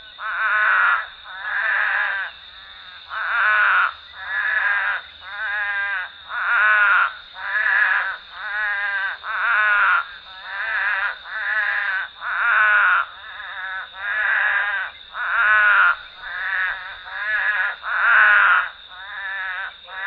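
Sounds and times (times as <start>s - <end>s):
Scaphiopus couchii spadefoot toads chorus in south central Texas: 0.0s - 20.0s.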